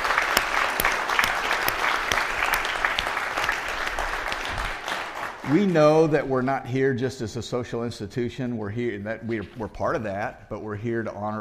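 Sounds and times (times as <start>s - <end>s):
audience applauding to honor seniors: 0.0s - 6.3s
speech: 5.5s - 11.3s.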